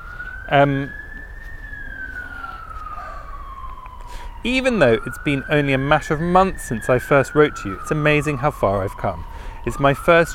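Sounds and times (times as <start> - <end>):
police siren passing outside: 0.0 - 10.3
speech: 0.5 - 1.0, 4.4 - 10.3.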